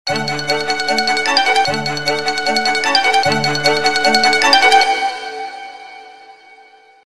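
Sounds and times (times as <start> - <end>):
classical ringtone on A3100 phone: 0.1 - 5.6.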